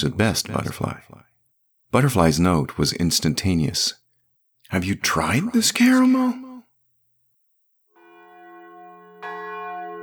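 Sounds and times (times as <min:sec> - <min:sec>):
speech: 0:00.0 - 0:01.3, 0:01.9 - 0:04.0, 0:04.7 - 0:06.4
church bells ringing for service: 0:08.0 - 0:10.0.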